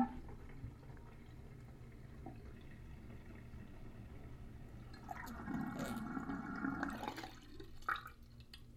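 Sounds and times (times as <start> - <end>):
water draining out of a sink: 0.0 - 8.7.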